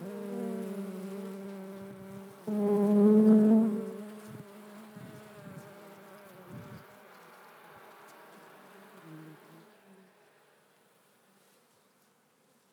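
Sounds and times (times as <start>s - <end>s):
honey bee buzzing: 0.0s - 7.0s.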